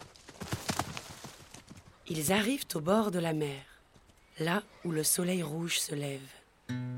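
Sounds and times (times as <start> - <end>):
horse hooves clip-clopping: 0.0 - 2.6
speech: 2.1 - 3.7, 4.4 - 6.9.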